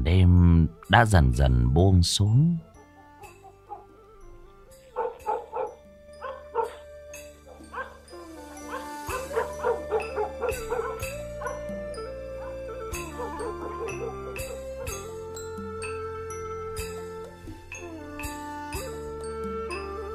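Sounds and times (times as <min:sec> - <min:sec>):
speech: 0:00.1 - 0:02.7
dogs barking in a village at nightfall: 0:02.8 - 0:04.0, 0:04.8 - 0:15.2.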